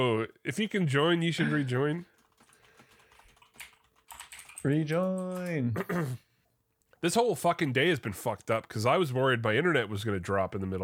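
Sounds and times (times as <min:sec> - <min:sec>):
speech: 0:00.0 - 0:02.1, 0:04.6 - 0:06.2, 0:07.0 - 0:10.8
typing on a computer keyboard: 0:02.1 - 0:05.6.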